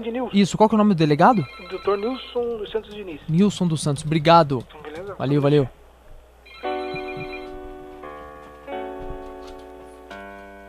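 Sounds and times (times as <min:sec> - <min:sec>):
speech: 0:00.0 - 0:05.8
telephone ringing with an electronic melodic tone: 0:01.3 - 0:03.3, 0:06.4 - 0:08.0.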